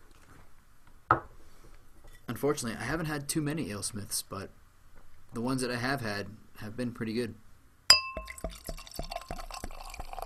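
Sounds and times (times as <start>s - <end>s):
speech: 2.4s - 4.6s, 5.3s - 7.4s
bright glassy clink of beer bottle on glass: 7.9s - 10.2s
beer glugging out of a bottle into a glass: 8.2s - 10.2s.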